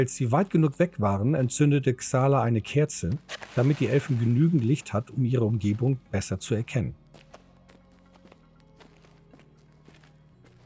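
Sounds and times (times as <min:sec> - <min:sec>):
speech: 0:00.0 - 0:07.0
low sustained hum: 0:00.0 - 0:10.6
soft echoing footsteps of two people walking slowly: 0:02.9 - 0:10.6.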